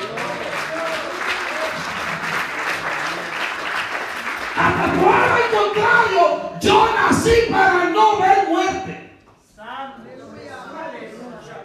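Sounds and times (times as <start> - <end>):
congregation applauding: 0.0 - 6.1
speech: 4.9 - 9.0.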